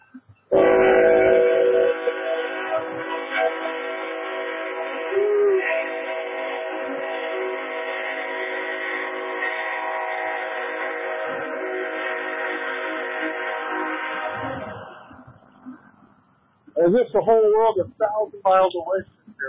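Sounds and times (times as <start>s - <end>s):
train rumbling on rails: 0.0s - 19.4s
train horn blast: 0.5s - 15.6s
speech: 16.9s - 19.4s.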